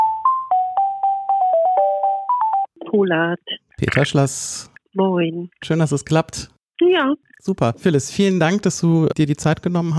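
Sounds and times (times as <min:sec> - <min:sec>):
GEMA-free electronic telephone hold music through a phone line: 0:00.0 - 0:02.8
speech: 0:02.9 - 0:09.9.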